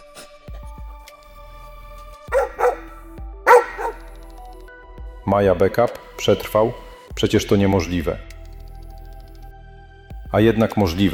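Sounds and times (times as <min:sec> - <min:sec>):
dog barking: 0:02.3 - 0:04.2
speech: 0:05.3 - 0:08.3, 0:10.3 - 0:11.1.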